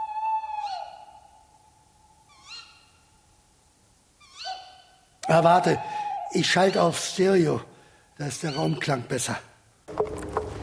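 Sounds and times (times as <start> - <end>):
owl hooting in a forest at night: 0.0 - 3.3, 4.2 - 7.5
speech: 5.3 - 10.0.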